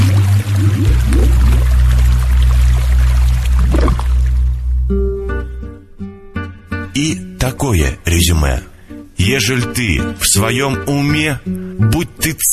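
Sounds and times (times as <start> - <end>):
splash of falling into a river: 0.0 - 4.6
low droning hum: 0.0 - 5.2
sustained musical tones: 0.0 - 6.0
speech: 7.0 - 12.5.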